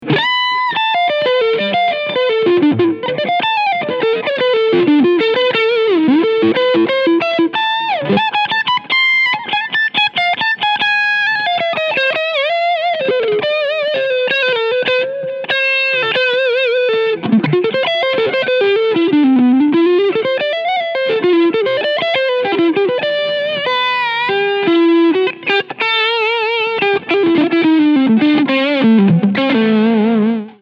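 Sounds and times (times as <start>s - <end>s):
overdrive preamp switch flipped down at full gain: 0.0s - 30.5s.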